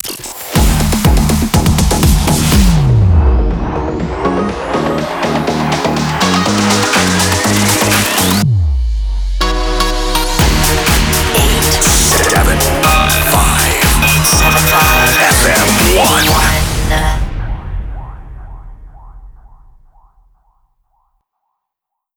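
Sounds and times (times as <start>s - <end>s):
music loop in D minor at 122 bpm: 0.6s - 8.4s, 9.0s - 17.3s.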